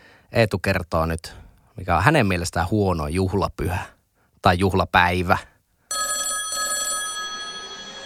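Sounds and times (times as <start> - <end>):
speech: 0.3 - 5.5
telephone bell ringing for an incoming call: 5.9 - 8.0.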